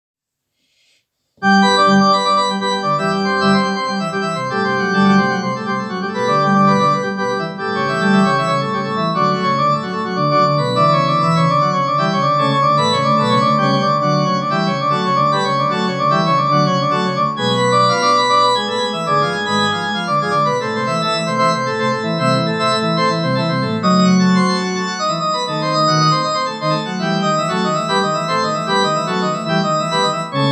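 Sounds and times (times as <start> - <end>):
organ prelude: 1.4 - 30.5.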